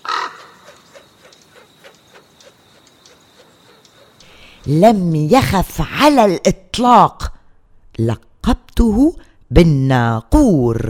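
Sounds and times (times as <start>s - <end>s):
crow cawing: 0.0s - 4.4s
speech: 4.6s - 7.3s, 8.0s - 10.8s.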